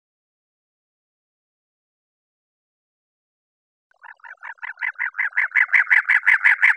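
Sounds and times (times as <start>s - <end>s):
cactus wren harsh chattering call: 4.4s - 6.7s.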